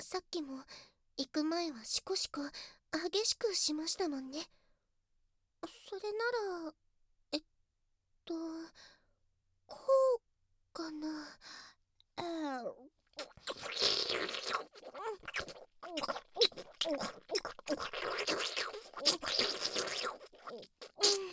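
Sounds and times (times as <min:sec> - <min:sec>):
speech: 0:00.0 - 0:04.6, 0:05.6 - 0:07.5, 0:08.3 - 0:09.0, 0:09.7 - 0:21.3
wet slurping and sucking mouth noises: 0:13.2 - 0:21.3.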